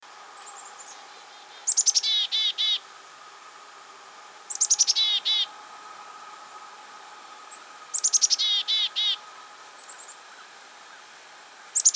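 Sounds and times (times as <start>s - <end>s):
black-capped chickadee Poecile atricapillus chick-a-dee calls: 0.4s - 2.8s, 4.5s - 5.5s, 7.9s - 11.9s.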